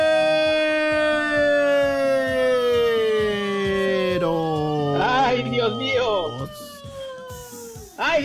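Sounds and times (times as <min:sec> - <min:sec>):
ambulance siren wailing: 0:00.1 - 0:08.2.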